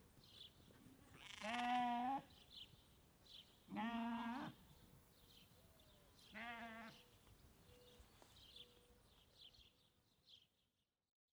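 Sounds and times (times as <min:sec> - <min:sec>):
sheep bleating on a ranch in Montana: 0:01.2 - 0:02.2, 0:03.7 - 0:04.6, 0:06.4 - 0:07.0.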